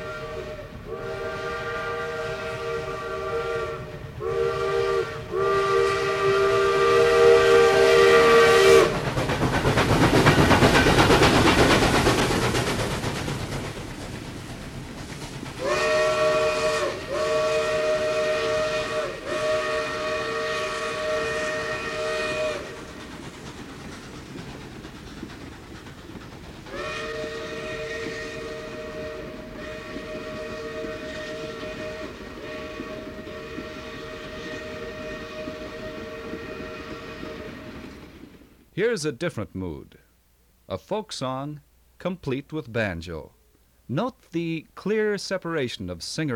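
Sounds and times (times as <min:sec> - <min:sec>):
train horn blasts: 0:00.0 - 0:09.0, 0:15.6 - 0:22.8, 0:26.7 - 0:37.8
train roaring past a station: 0:00.0 - 0:39.0
speech: 0:38.8 - 0:40.0, 0:40.7 - 0:46.3.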